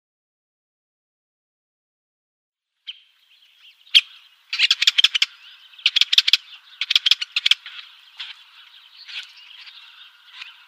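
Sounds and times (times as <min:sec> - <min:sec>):
Syrian woodpecker calls: 0:02.8 - 0:10.6.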